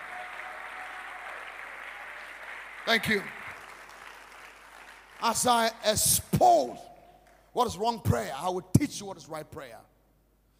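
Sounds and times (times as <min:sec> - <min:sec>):
large gathering applauding: 0:00.0 - 0:06.2
speech: 0:02.8 - 0:03.4, 0:05.2 - 0:06.9, 0:07.6 - 0:09.9.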